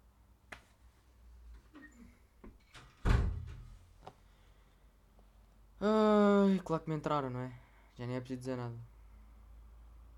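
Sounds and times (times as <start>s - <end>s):
bedroom door shutting with a solid thump: 1.8s - 3.8s
speech: 5.8s - 8.9s.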